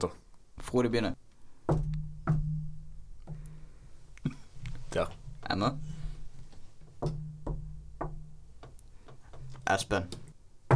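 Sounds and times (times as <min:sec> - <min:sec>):
speech: 0:00.0 - 0:02.0, 0:04.9 - 0:05.9, 0:09.7 - 0:10.2
hesitant knocking on a wooden door: 0:01.7 - 0:03.6, 0:06.8 - 0:09.5.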